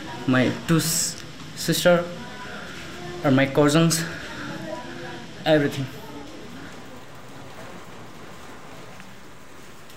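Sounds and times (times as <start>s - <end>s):
steady rain falling: 0.0s - 9.9s
speech: 0.2s - 2.2s, 3.2s - 4.2s, 5.4s - 6.0s.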